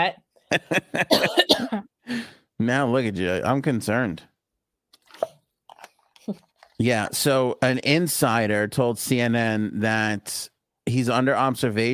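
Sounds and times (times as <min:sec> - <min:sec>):
speech: 0:00.0 - 0:04.3, 0:06.3 - 0:11.9
laughter: 0:00.5 - 0:01.2
harsh rasping coughs: 0:00.8 - 0:01.9.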